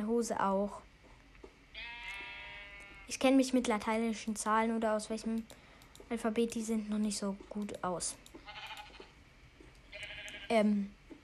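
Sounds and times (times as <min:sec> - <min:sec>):
speech: 0:00.0 - 0:00.9, 0:03.1 - 0:08.7, 0:10.5 - 0:11.0
sheep bleating: 0:01.8 - 0:03.1, 0:08.5 - 0:09.1, 0:09.9 - 0:10.5.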